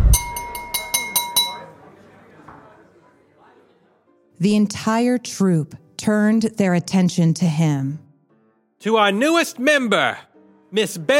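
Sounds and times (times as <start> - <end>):
knife tapping a drinking glass to ring in a toast: 0.0 - 1.7
speech: 4.4 - 8.0, 8.8 - 11.1.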